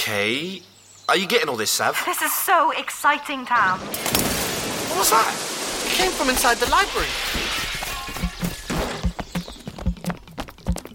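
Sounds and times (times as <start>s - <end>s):
speech: 0.1s - 4.4s, 5.0s - 7.5s
window pane shattering: 3.8s - 9.0s.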